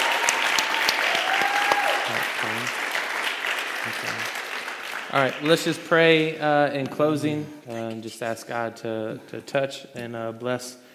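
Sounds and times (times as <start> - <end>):
faint voices and cheers: 0.0 - 2.7
room full of people applauding: 0.0 - 6.3
speech: 3.9 - 4.4, 5.1 - 10.8.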